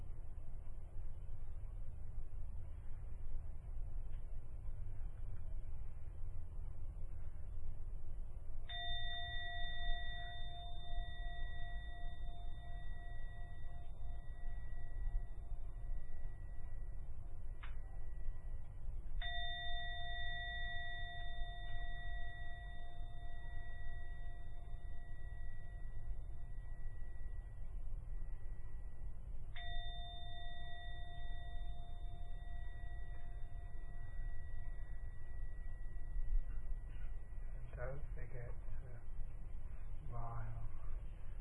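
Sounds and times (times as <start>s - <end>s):
low constant hum: 0.0s - 41.3s
meditation gong ringing: 8.7s - 29.0s, 29.6s - 38.6s.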